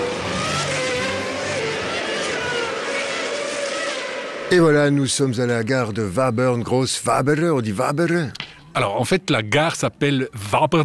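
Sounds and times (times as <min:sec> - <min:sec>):
Formula 1 race car overtaking with high engine whine: 0:00.0 - 0:06.6
speech: 0:04.5 - 0:10.8.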